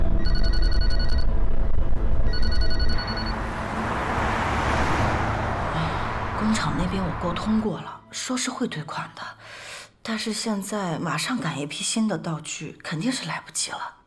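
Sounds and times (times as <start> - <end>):
phone ringing in electronic bursts: 0.2 - 1.3, 2.3 - 3.4
steady rumble of a moving vehicle: 0.8 - 7.9
speech: 7.2 - 14.0.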